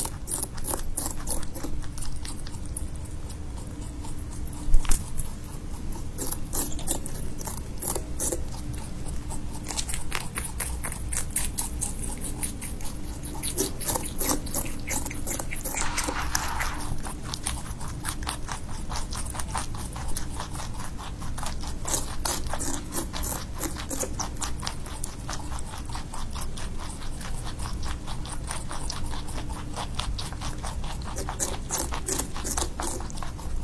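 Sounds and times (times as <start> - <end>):
small rabbit eating grass with crisp crunching bites: 0.0 - 33.6
steady low hum: 0.0 - 33.6.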